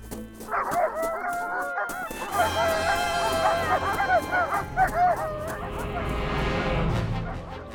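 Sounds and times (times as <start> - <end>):
several dogs barking and yelping excitedly: 0.4 - 6.4.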